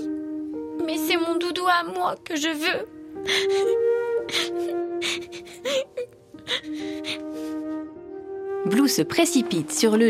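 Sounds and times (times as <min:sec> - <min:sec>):
soft sustained music: 0:00.0 - 0:10.0
speech: 0:00.8 - 0:05.9, 0:08.7 - 0:10.0
child whimpering and crying: 0:02.6 - 0:07.9.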